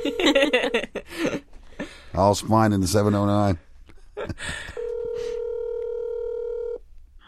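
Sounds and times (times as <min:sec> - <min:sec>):
speech: 0:00.2 - 0:00.6, 0:02.2 - 0:03.7
telephone dialing beeps: 0:04.8 - 0:06.8.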